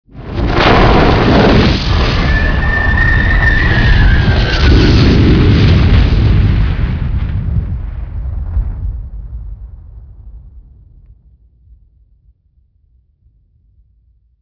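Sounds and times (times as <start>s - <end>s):
portal blast: 0.2s - 7.2s.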